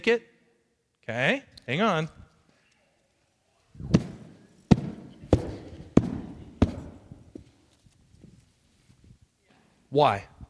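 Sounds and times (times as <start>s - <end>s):
speech: 0.0s - 0.3s, 1.0s - 2.2s, 9.9s - 10.3s
heavy stomps on a paper banknote: 3.9s - 7.0s.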